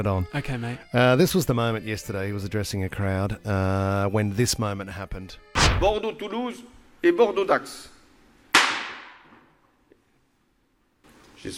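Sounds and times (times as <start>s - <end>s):
speech: 0.0s - 7.9s
gunshot at a crowd gathering: 5.6s - 6.0s, 8.6s - 9.2s.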